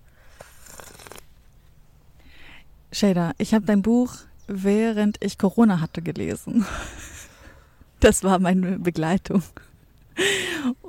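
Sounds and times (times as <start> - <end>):
person slurping hot peppermint tea: 0.3 - 1.3
speech: 3.0 - 7.0, 8.0 - 10.8.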